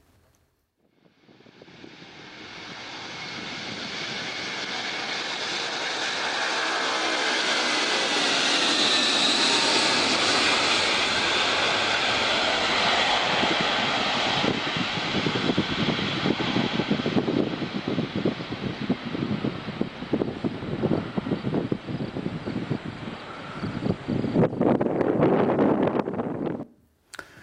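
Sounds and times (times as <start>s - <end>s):
Antonov An-225 cargo plane engines roaring overhead: 0.9s - 26.6s.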